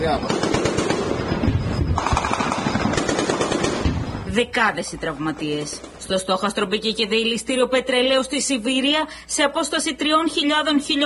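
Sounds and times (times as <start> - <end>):
speech: 0.0 - 0.5, 4.4 - 11.0
rapid bursts of automatic gunfire: 0.2 - 1.2, 2.0 - 4.1.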